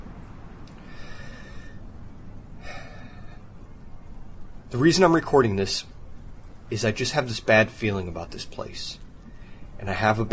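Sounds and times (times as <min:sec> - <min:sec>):
steady hiss: 0:00.0 - 0:10.3
distressed person taking deep breaths: 0:00.8 - 0:01.9, 0:02.6 - 0:03.5
speech: 0:04.7 - 0:05.9, 0:06.7 - 0:09.0, 0:09.8 - 0:10.3.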